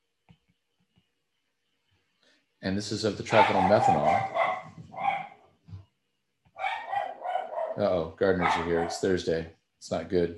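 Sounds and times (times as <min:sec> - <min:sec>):
speech: 0:02.6 - 0:04.4, 0:07.8 - 0:10.3
dog barking as gardeners arrive: 0:03.3 - 0:05.4, 0:06.6 - 0:09.1.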